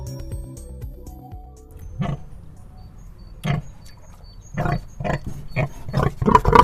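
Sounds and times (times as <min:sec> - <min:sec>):
pig grunting and snorting in a wooden cage: 0:02.0 - 0:02.4, 0:03.4 - 0:03.8, 0:04.5 - 0:06.6.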